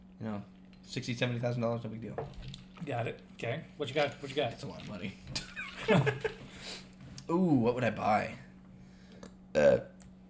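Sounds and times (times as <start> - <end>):
room hum: 0.0 - 10.2
speech: 0.2 - 6.4, 7.3 - 8.4, 9.6 - 9.9
laughter: 5.3 - 6.8
person burping: 9.6 - 10.0.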